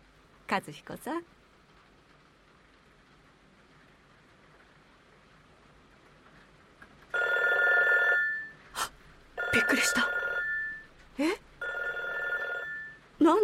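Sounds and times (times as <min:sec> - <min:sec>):
speech: 0:00.5 - 0:01.4
telephone ringing with bright buzzing electronic tone: 0:07.2 - 0:08.6, 0:09.4 - 0:11.0, 0:11.6 - 0:13.4.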